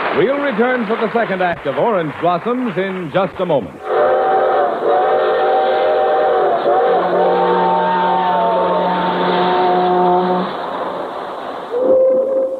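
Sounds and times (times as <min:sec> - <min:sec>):
speech: 0:00.2 - 0:04.0
freight train whistle blasts: 0:03.8 - 0:12.5.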